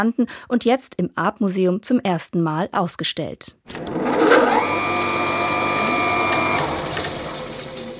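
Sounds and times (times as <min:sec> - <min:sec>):
speech: 0:00.0 - 0:05.1
kinetic artwork built from a sewing machine table whirring: 0:03.7 - 0:07.9
fast busy mechanical clatter of a sewing machine needle: 0:03.8 - 0:07.9
humming motor of a kinetic sewing machine artwork: 0:03.8 - 0:07.9.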